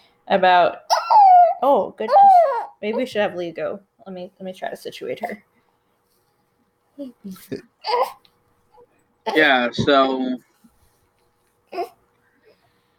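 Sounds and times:
speech: 0.3 - 0.9, 1.6 - 5.5, 7.0 - 8.3, 9.3 - 10.5, 11.7 - 12.0
newborn baby girl fussing and whimpering: 0.9 - 3.1, 7.8 - 8.2, 11.7 - 12.0
adult speaking: 9.3 - 10.4.

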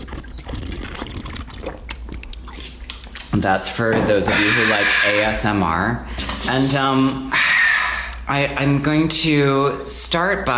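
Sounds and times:
water pouring into a glass: 0.0 - 2.3
speech: 3.4 - 7.4, 8.3 - 10.5.

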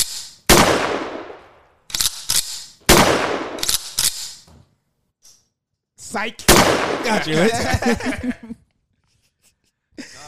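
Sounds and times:
loud gunshot sound effects: 0.0 - 4.3, 6.5 - 7.5
speech: 6.1 - 8.6
laughter: 7.0 - 10.2.

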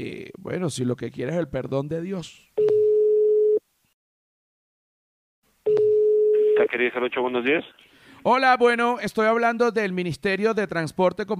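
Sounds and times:
speech: 0.0 - 2.5, 6.6 - 11.3
telephone line tone while placing a call: 2.6 - 3.6, 5.7 - 6.9.

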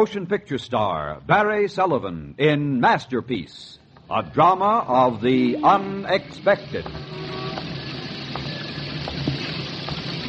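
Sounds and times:
speech: 0.0 - 7.3
afternoon rain pouring on old brownstone houses in Lower Manhattan: 5.1 - 10.2
water streaming and gushing from drain pipes and gutters: 6.3 - 10.2.

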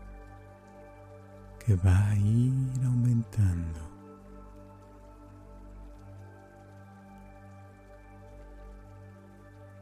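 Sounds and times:
low calm musical drone: 0.0 - 9.7
rain falling in a soft continuous patter: 0.0 - 9.7
speech: 1.6 - 3.9.

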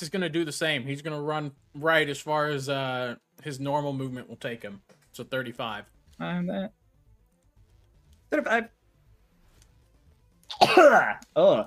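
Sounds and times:
speech: 0.0 - 6.8, 8.3 - 8.8, 10.5 - 11.6
loud sneeze: 10.5 - 11.2.

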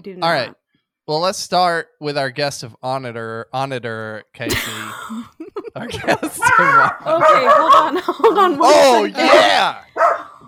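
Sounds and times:
speech: 0.0 - 9.9
laughter: 4.5 - 9.6
dog barking: 6.4 - 8.0, 9.3 - 10.4.

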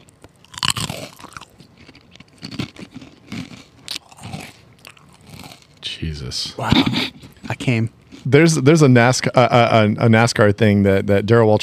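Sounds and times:
crunching and chewing of thick Fritos corn chips: 0.0 - 5.9
speech: 6.0 - 11.6.

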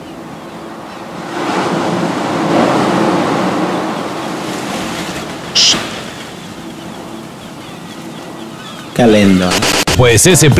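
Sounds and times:
sea waves: 0.0 - 10.0
speech: 9.0 - 10.5.

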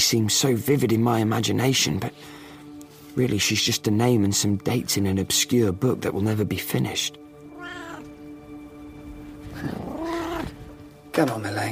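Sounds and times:
speech: 0.1 - 2.4, 3.2 - 7.2, 9.6 - 9.9, 11.2 - 11.7
cat meowing: 7.4 - 8.3, 9.6 - 10.6.

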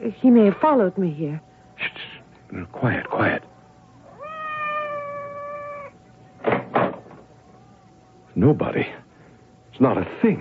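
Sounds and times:
speech: 0.0 - 1.5, 2.5 - 3.5, 8.4 - 9.0, 9.8 - 10.3
cat meowing outside a door: 4.1 - 6.0.

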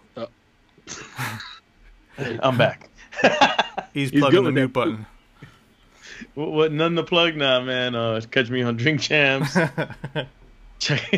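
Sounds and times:
speech: 0.2 - 0.4, 2.2 - 5.2, 6.4 - 11.1
harsh coughing fit: 0.9 - 1.6
laughter: 0.9 - 1.6, 2.2 - 5.0, 9.4 - 11.1
throat clearing rasps: 0.9 - 1.6.

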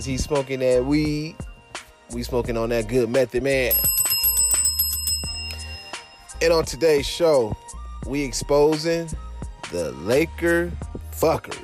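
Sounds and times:
speech: 0.0 - 1.4, 2.1 - 4.0, 6.4 - 11.6
bell ringing: 3.6 - 7.7.

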